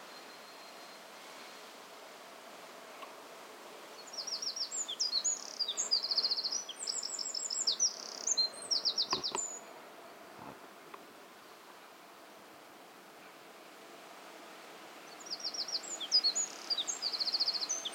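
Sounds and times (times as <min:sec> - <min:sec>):
quiet background hiss: 0:00.0 - 0:17.9
Eurasian wren singing fast rattling trills: 0:03.9 - 0:10.2, 0:15.0 - 0:17.9.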